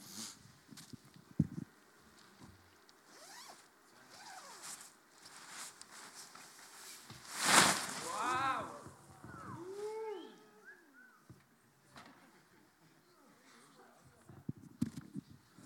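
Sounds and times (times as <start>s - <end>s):
fabric of pop-up beach shelter rustling and crinkling: 2.5s - 8.3s
pop-up beach shelter springing open with whooshing flap: 6.9s - 8.3s
voices on a beach: 8.0s - 14.5s.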